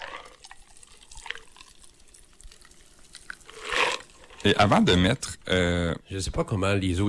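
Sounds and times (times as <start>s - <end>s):
liquid pouring into a glass with long ice: 0.0s - 4.7s
speech: 4.4s - 7.0s.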